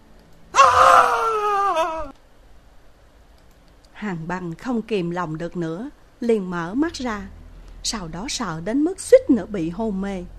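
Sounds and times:
anguished scream of pain: 0:00.5 - 0:02.2
speech: 0:04.0 - 0:10.3.

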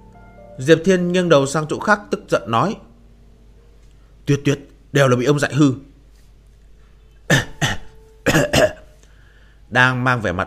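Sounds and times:
speech: 0:00.6 - 0:02.9, 0:04.3 - 0:05.9, 0:09.7 - 0:10.4
man coughing dryly: 0:07.3 - 0:08.9.

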